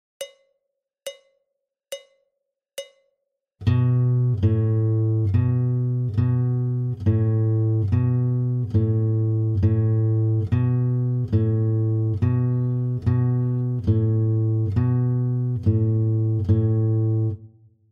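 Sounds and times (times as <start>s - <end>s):
guitar warm-up on low H: 3.6s - 17.4s.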